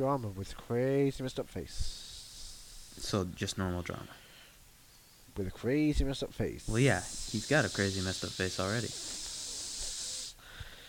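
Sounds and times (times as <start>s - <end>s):
speech: 0.0s - 2.0s, 3.0s - 4.2s, 5.4s - 9.2s
person hissing imitating a snake: 1.7s - 3.1s, 6.6s - 10.4s.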